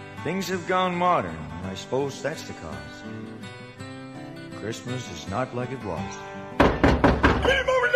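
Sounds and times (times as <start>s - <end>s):
speech: 0.2s - 3.6s, 4.6s - 6.4s, 7.4s - 7.8s
firm knocks on a porch door: 6.6s - 7.7s.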